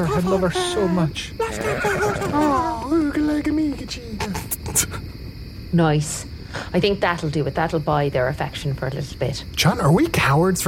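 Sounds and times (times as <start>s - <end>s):
person imitating the whinny of a tiny horse: 0.0s - 2.9s
speech: 0.0s - 5.0s, 5.7s - 10.6s.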